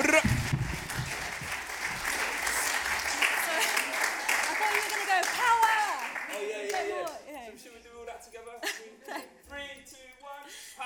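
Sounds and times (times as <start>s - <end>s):
audience applause at a poetry festival showcase of school students: 0.0s - 7.2s.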